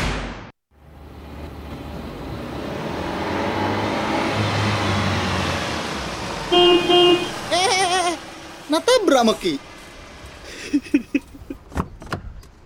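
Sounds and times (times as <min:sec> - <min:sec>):
car engine rumbling as the car approaches: 0:00.8 - 0:12.6
short car horn bursts: 0:06.5 - 0:07.5
laughter: 0:07.5 - 0:08.2, 0:10.5 - 0:11.6
speech: 0:08.7 - 0:09.7.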